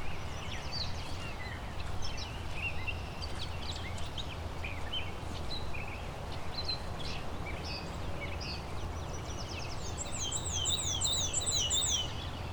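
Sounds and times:
black-and-white warbler singing thin high two-note phrases: 0:00.0 - 0:12.5
bird chirps: 0:09.2 - 0:12.2.

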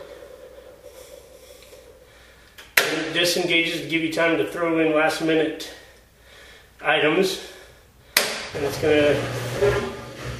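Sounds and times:
low mechanical hum: 0:00.0 - 0:10.3
speech: 0:03.1 - 0:05.8, 0:06.8 - 0:07.5, 0:08.5 - 0:09.9
washing machine drain pump running: 0:08.5 - 0:10.3.

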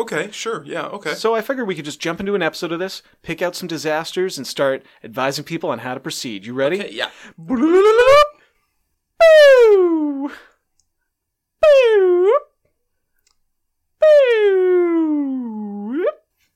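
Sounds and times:
speech: 0:00.0 - 0:08.2, 0:09.3 - 0:10.5
voice imitating a police siren: 0:07.4 - 0:08.4, 0:09.2 - 0:10.4, 0:11.6 - 0:12.5, 0:14.0 - 0:16.2.

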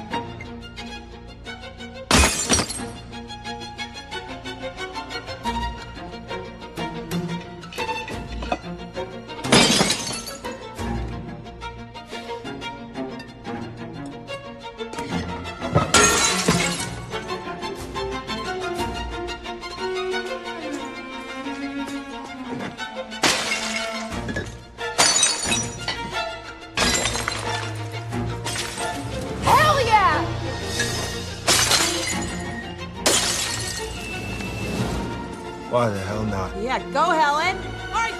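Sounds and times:
busy orchestral string score: 0:00.0 - 0:38.1
glass art piece shattering: 0:02.1 - 0:03.0, 0:09.4 - 0:10.6, 0:15.6 - 0:17.2, 0:23.2 - 0:26.2, 0:26.8 - 0:29.1, 0:31.4 - 0:34.4
speech: 0:36.8 - 0:37.6.

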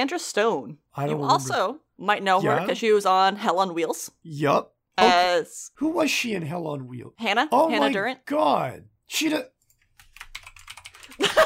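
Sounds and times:
speech: 0:00.0 - 0:09.5
frantic typing on a computer keyboard: 0:09.7 - 0:11.4.

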